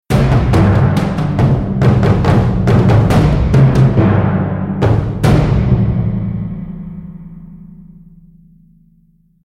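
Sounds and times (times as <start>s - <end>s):
arena drums: 0.1s - 7.5s
music: 0.1s - 9.4s.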